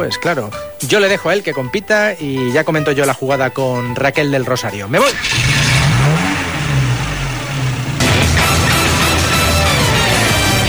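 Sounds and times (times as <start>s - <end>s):
speech: 0.0s - 5.6s
motorcycle engine revving and riding away at full throttle: 5.0s - 10.6s.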